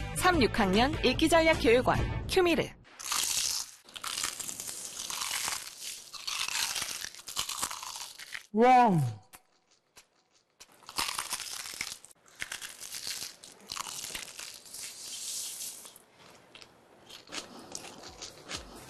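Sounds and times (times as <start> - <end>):
speech: 0.3 - 2.8, 8.5 - 9.2
person biting and chewing crispy fried chicken: 2.9 - 8.5, 9.4 - 18.8.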